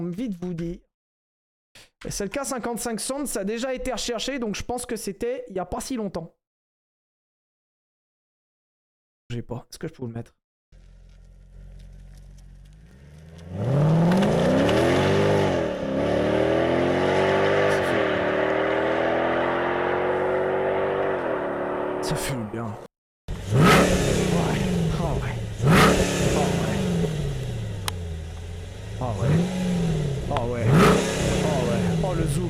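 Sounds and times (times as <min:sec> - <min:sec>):
speech: 0:00.0 - 0:00.9, 0:01.8 - 0:06.4, 0:09.3 - 0:10.4
car engine revving through its exhaust pipe: 0:10.8 - 0:22.4, 0:23.3 - 0:32.4.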